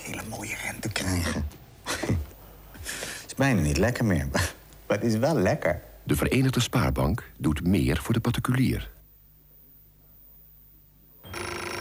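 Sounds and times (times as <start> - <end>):
speech: 0.3 - 1.6, 3.4 - 9.0
telephone bell ringing: 11.2 - 11.7.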